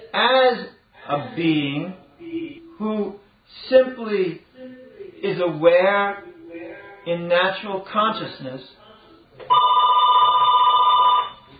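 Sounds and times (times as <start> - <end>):
speech: 0.2 - 2.0, 2.8 - 4.5, 5.2 - 6.3, 7.0 - 8.8
electronic telephone ringing: 9.5 - 11.5.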